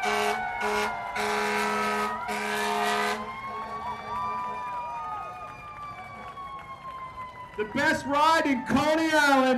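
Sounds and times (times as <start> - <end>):
fire truck air horn blasts: 0.0 - 4.7
fire truck wailing siren: 0.0 - 9.5
traffic noise: 0.0 - 9.5
speech: 8.0 - 9.5.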